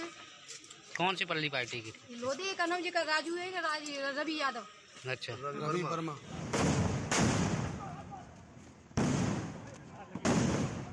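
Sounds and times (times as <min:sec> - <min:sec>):
speech: 0:01.0 - 0:06.4
gunfire and exploding shells: 0:06.4 - 0:08.0, 0:09.0 - 0:10.9.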